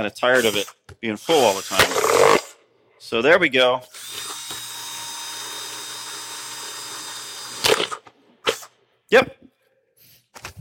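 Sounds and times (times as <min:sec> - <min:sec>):
speech: 0:00.0 - 0:02.4, 0:03.0 - 0:04.0, 0:09.1 - 0:09.4
power drill drilling holes in a pitcher: 0:00.3 - 0:02.5, 0:03.9 - 0:08.1.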